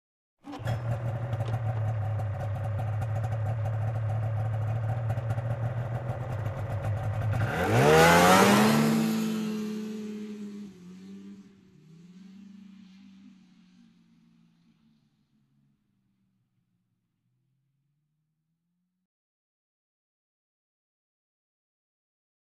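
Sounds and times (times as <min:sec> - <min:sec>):
offroad motorbike driving away: 0:00.5 - 0:14.8.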